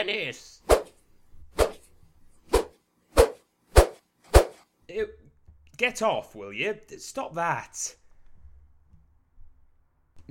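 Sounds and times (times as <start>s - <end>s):
speech: 0.0s - 0.8s, 5.8s - 8.0s
whip cracks: 2.5s - 4.6s.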